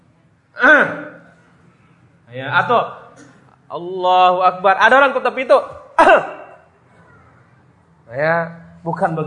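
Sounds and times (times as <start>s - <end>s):
speech: 2.3s - 6.4s, 8.1s - 9.2s
throat clearing: 6.0s - 6.7s.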